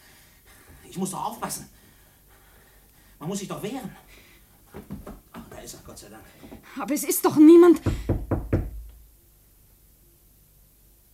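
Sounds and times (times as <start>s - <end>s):
speech: 0.9s - 1.8s, 3.2s - 8.2s
firm knocking on a wooden door: 7.7s - 9.0s.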